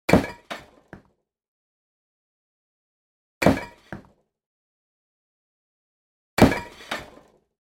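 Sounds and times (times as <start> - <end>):
brick breaking: 0.1 - 1.1, 6.4 - 7.5.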